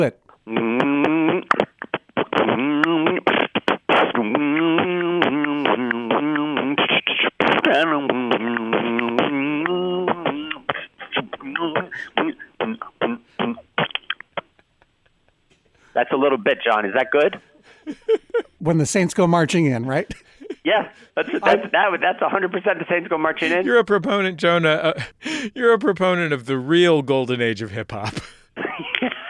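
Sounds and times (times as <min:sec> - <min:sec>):
speech: 0:00.0 - 0:00.7, 0:16.2 - 0:18.0, 0:18.6 - 0:28.3
mouth-made beatbox percussion with clicks and kick-like thumps: 0:00.0 - 0:14.7
person humming a bouncy melody: 0:00.4 - 0:14.1
laughter: 0:07.6 - 0:15.6, 0:16.2 - 0:26.0, 0:27.9 - 0:29.2.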